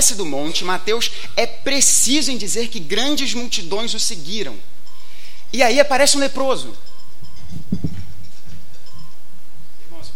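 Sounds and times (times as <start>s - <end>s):
speech: 0.0s - 4.7s, 5.5s - 6.9s
wristwatch alarm beeping in thin high tones: 4.8s - 9.6s.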